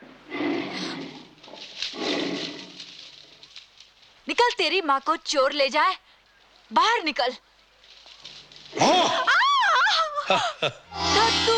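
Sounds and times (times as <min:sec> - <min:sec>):
wild animal growling: 0:00.3 - 0:03.0
speech: 0:04.5 - 0:06.0, 0:06.7 - 0:07.5, 0:08.7 - 0:09.3, 0:10.3 - 0:11.5.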